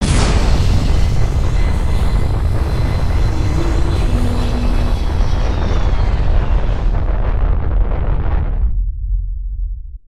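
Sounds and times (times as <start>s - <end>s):
rocket engine during landing: 0.0s - 8.7s.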